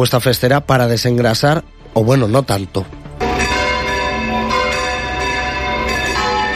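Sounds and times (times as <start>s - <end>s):
speech: 0.0s - 3.0s
bells of a 17th-century church pealing: 3.2s - 6.5s.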